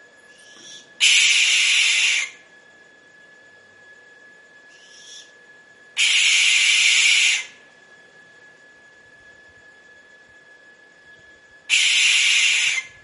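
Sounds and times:
barn owl screeching with harsh hissing shrieks: 0.3s - 2.4s, 4.7s - 5.4s, 6.0s - 7.6s, 11.7s - 13.0s.

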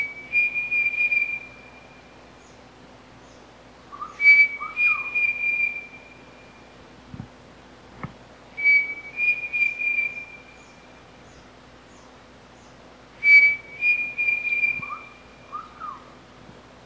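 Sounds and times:
pavonine cuckoo song: 0.0s - 2.1s, 3.9s - 6.6s, 8.6s - 11.4s, 13.2s - 16.1s.

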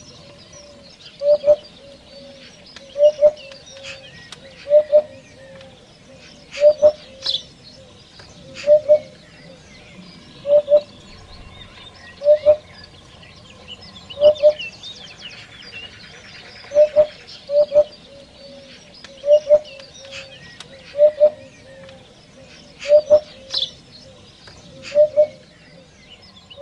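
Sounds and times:
African hoopoe singing: 0.6s - 9.6s, 10.4s - 11.0s, 12.2s - 12.8s, 16.2s - 25.9s.

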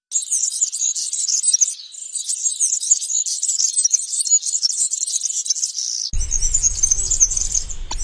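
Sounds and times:
European serin twittering song: 0.1s - 8.0s
low rumbling noise: 6.2s - 8.0s.

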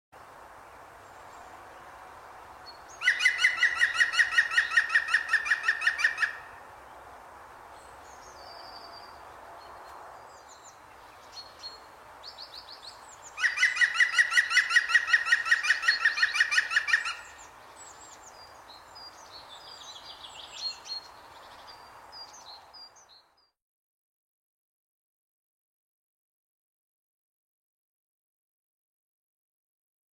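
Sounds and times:
green woodpecker calling: 2.8s - 6.6s, 13.3s - 17.5s.

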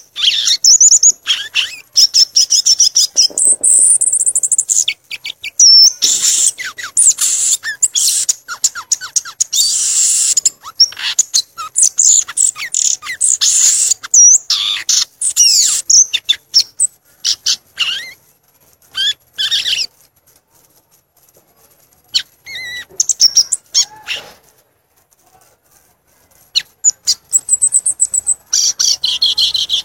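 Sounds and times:
violaceous euphonia song: 0.0s - 20.1s, 22.1s - 24.6s, 26.4s - 29.8s.

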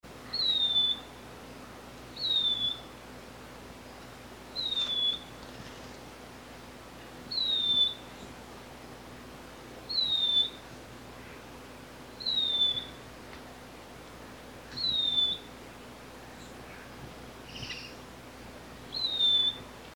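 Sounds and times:
grey antwren singing: 0.3s - 1.2s, 2.1s - 2.9s, 4.5s - 5.4s, 7.3s - 8.3s, 9.9s - 10.6s, 12.2s - 13.0s, 14.7s - 15.5s, 17.4s - 18.0s, 18.9s - 19.7s.

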